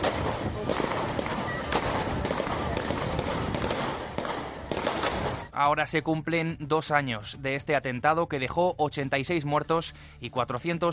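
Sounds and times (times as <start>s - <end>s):
rapid gunshots during police shootout: 0.0s - 5.5s
speech: 5.6s - 10.9s.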